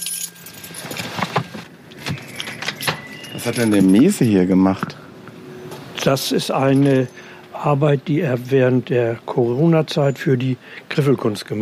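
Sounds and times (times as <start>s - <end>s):
keys jangling as a car is parked: 0.0s - 1.4s, 2.0s - 4.3s
speech: 3.4s - 5.0s, 6.0s - 11.6s.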